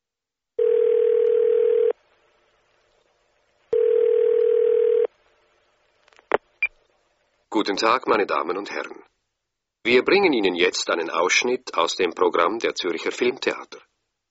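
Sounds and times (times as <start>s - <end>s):
telephone line buzzing tones on a call to a cinema information line: 0.6s - 2.0s, 3.7s - 5.1s
speech: 7.6s - 9.1s, 9.8s - 13.9s.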